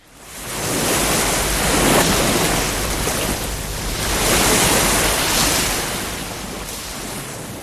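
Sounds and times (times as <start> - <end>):
ocean waves breaking on a beach: 0.0 - 7.6.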